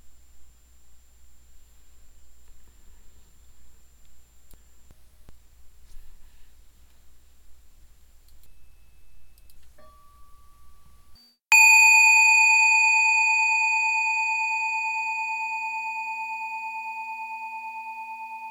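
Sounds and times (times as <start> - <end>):
meditation bell struck and ringing: 8.6 - 18.4.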